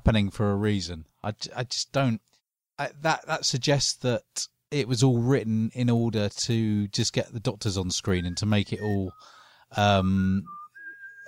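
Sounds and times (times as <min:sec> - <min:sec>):
speech: 0:00.0 - 0:10.6
person whistling: 0:08.2 - 0:11.2.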